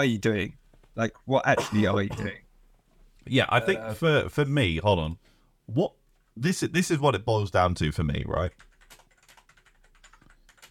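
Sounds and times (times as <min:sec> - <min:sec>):
speech: 0:00.0 - 0:02.4, 0:03.2 - 0:08.7
computer keyboard typing: 0:08.4 - 0:10.6.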